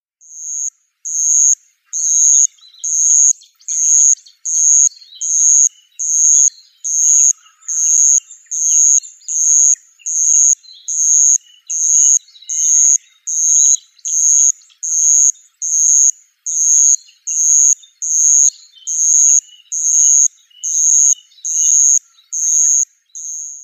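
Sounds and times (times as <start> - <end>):
madara suzu ground cricket chirping: 0.2 - 23.6.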